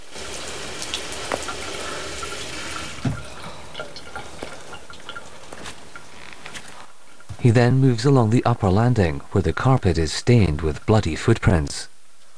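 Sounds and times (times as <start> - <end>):
water tap running into a bathroom sink: 0.0 - 7.4
speech: 7.4 - 11.9.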